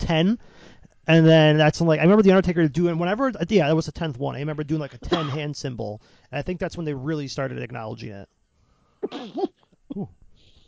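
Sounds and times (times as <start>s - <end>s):
speech: 0.1s - 8.4s, 9.0s - 10.2s
faint hiss: 0.1s - 10.6s
loud raspy cough: 5.0s - 5.5s, 9.0s - 10.1s.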